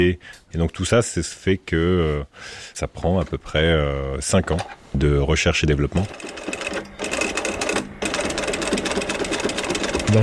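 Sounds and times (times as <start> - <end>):
speech: 0.0 - 6.9
sewing machine stitching a strap with a quick-release buckle using thick thread: 6.0 - 10.2.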